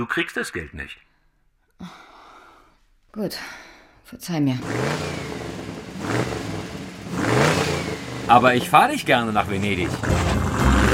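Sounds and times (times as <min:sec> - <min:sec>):
speech: 0:00.0 - 0:01.1, 0:01.8 - 0:02.1, 0:03.1 - 0:05.3, 0:08.3 - 0:10.4
Porsche sports car engine roaring at high revs around 200 km/h: 0:04.6 - 0:10.9.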